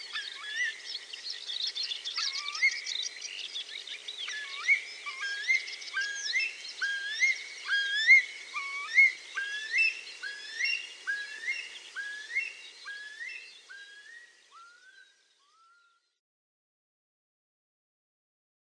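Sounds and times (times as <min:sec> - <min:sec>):
Eurasian curlew giving rising whistled notes: 0:02.0 - 0:02.9, 0:04.2 - 0:16.0.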